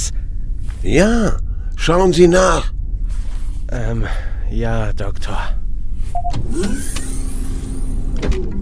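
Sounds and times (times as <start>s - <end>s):
low hum: 0.0s - 8.6s
speech: 0.8s - 2.8s, 3.7s - 5.6s, 6.2s - 7.1s, 8.2s - 8.6s
motorized shuttle door sliding open: 6.2s - 8.6s.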